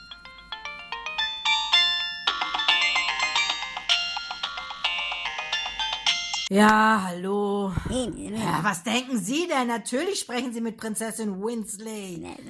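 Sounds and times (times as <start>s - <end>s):
mobile phone ringtone playing a bright melodic electronic tune: 0.0s - 6.5s
speech: 6.5s - 12.4s.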